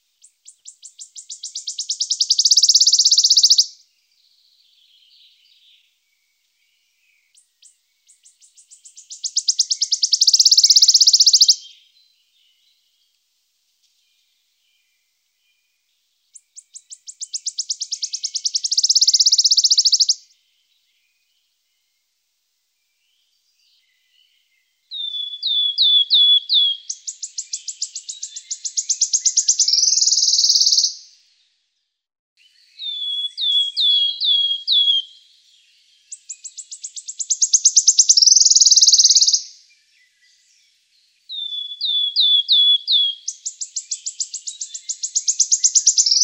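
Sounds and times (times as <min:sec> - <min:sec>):
bird calls: 0:00.0 - 0:03.8, 0:06.6 - 0:12.8, 0:16.3 - 0:21.3, 0:23.1 - 0:31.1, 0:32.4 - 0:46.2
bird whistle: 0:01.1 - 0:03.7, 0:09.1 - 0:11.8, 0:16.8 - 0:20.2, 0:24.9 - 0:31.0, 0:32.8 - 0:35.2, 0:36.2 - 0:39.5, 0:41.3 - 0:46.2.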